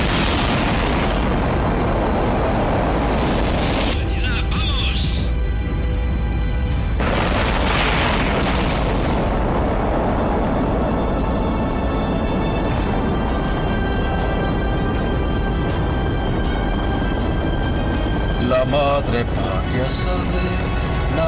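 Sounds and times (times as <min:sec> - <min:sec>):
rocket engines igniting at liftoff: 0:00.0 - 0:05.8, 0:06.8 - 0:21.2.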